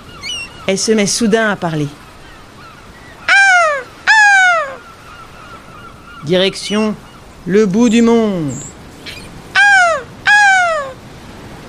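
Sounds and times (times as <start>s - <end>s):
seagull on a small sailboat's mast giving piercing cries: 0.0s - 1.2s, 2.0s - 7.4s, 8.5s - 11.0s
speech: 0.7s - 2.0s, 6.3s - 8.7s.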